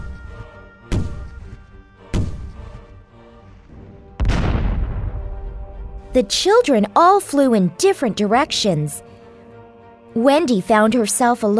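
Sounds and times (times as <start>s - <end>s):
heavy cannon blasts: 4.2s - 6.1s
speech: 6.1s - 9.1s, 10.2s - 11.5s.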